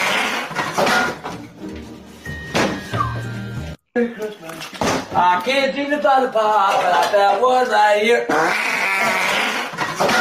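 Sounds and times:
long squeaky wavering fart: 0:00.0 - 0:00.7, 0:08.3 - 0:10.2
speech: 0:04.0 - 0:10.2.

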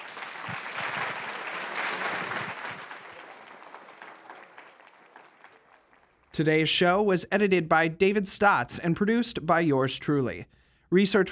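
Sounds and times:
audience applauding to thank panelists after a session: 0:00.0 - 0:06.3
speech: 0:06.4 - 0:11.3.

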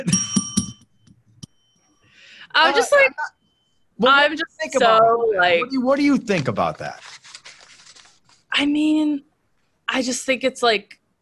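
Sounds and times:
speech: 0:00.0 - 0:00.3, 0:02.5 - 0:03.4, 0:04.0 - 0:07.1, 0:08.6 - 0:09.3, 0:09.9 - 0:11.0
bright bell-like ding: 0:00.0 - 0:02.2.

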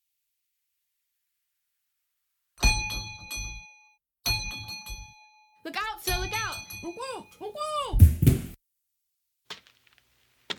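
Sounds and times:
bell clanging with a bright metallic ring: 0:02.6 - 0:07.4
speech: 0:05.6 - 0:08.1.

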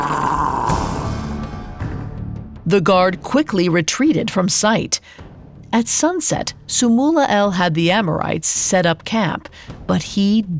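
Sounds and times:
man growling at a guard: 0:00.0 - 0:01.4
speech: 0:02.7 - 0:10.5.

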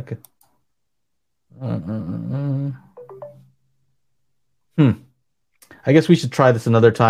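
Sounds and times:
speech: 0:00.0 - 0:00.3, 0:01.5 - 0:02.9, 0:04.8 - 0:05.0, 0:05.8 - 0:07.0
electronic phone ringtone with quick tonal beeps: 0:03.0 - 0:03.5.

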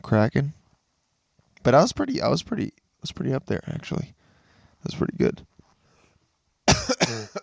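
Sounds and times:
speech: 0:00.0 - 0:00.6, 0:01.6 - 0:04.2, 0:04.8 - 0:05.5
person coughing into the microphone: 0:06.7 - 0:07.4.

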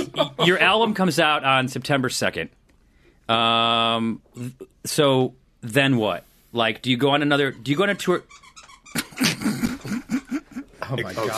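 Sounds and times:
speech: 0:00.2 - 0:02.6, 0:03.3 - 0:09.6, 0:10.9 - 0:11.3
dog chewing a squeaky little frog chew toy: 0:07.5 - 0:09.1.

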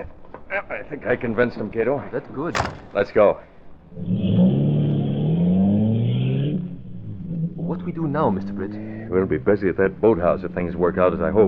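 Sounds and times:
speech: 0:00.0 - 0:04.5, 0:07.7 - 0:11.4
car engine revving as car accelerates and drives off: 0:03.8 - 0:11.4.

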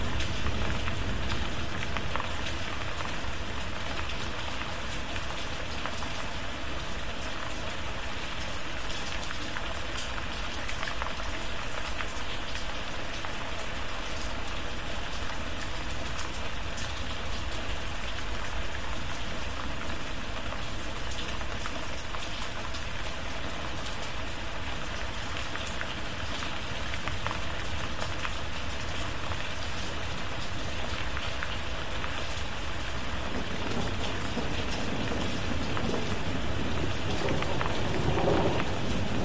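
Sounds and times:
steady dense rain: 0:00.0 - 0:39.2.

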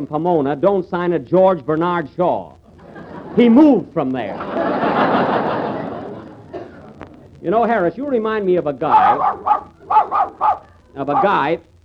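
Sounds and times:
speech: 0:00.0 - 0:02.6, 0:03.4 - 0:04.8, 0:07.4 - 0:11.7
laughter: 0:02.7 - 0:07.9, 0:08.8 - 0:11.4
dog barking: 0:08.8 - 0:11.5.

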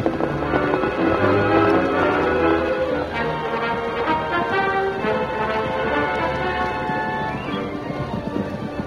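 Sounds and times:
music: 0:00.0 - 0:08.8
pack of racehorses galloping in a race: 0:00.0 - 0:08.8.

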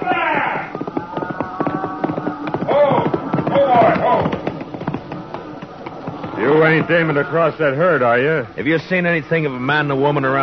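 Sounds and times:
horse hooves of a rider on a cattle trail: 0:00.0 - 0:07.9
speech: 0:06.6 - 0:10.4.

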